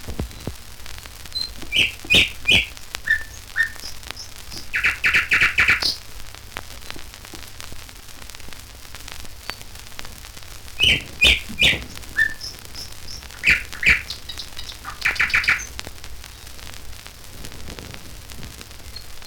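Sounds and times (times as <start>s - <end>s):
steady hiss: 0.0s - 19.2s
nightingale song: 1.3s - 6.0s, 9.4s - 9.7s, 10.7s - 15.9s, 18.8s - 19.2s.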